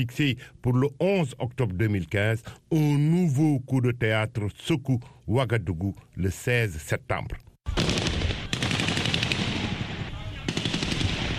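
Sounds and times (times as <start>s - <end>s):
speech: 0.0s - 7.5s
automatic gunfire during a coup: 7.7s - 11.3s.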